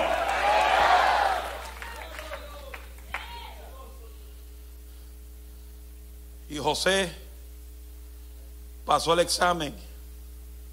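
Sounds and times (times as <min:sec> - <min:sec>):
audience shouting praise to God together: 0:00.0 - 0:03.6
speech: 0:06.6 - 0:07.2, 0:08.9 - 0:09.9.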